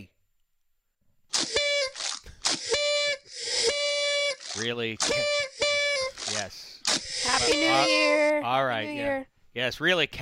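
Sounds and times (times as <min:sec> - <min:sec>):
shrill whistle sound effect blast with breathy hiss: 0:01.4 - 0:08.0
speech: 0:04.6 - 0:05.6, 0:06.3 - 0:10.2.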